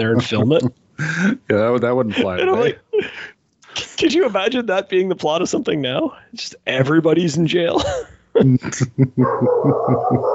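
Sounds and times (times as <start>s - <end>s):
laughter: 0.0s - 4.0s, 7.7s - 10.3s
speech: 0.0s - 10.3s
dog giving sharp yappy barks: 9.2s - 10.3s.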